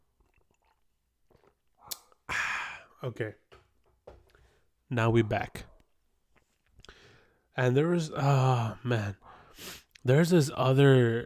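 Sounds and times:
person sipping tea: 0.0s - 2.9s
speech: 3.0s - 3.5s, 4.9s - 5.7s, 7.6s - 11.2s.

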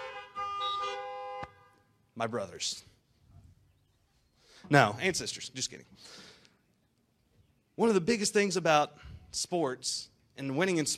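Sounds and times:
car horns honking: 0.0s - 2.0s
speech: 2.2s - 2.9s, 4.6s - 6.3s, 7.8s - 10.9s.

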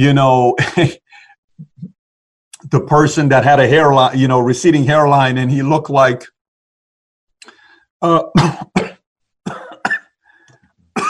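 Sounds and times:
speech: 0.0s - 1.0s, 2.7s - 6.3s, 8.0s - 8.8s
throat clearing: 8.2s - 10.1s
person coughing in harsh hacking bursts: 8.2s - 10.2s.

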